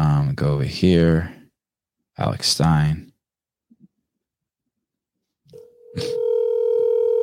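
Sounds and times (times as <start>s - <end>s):
speech: 0.4s - 1.4s, 2.2s - 3.1s, 6.0s - 6.2s
FaceTime video call ringing tone: 5.6s - 7.2s.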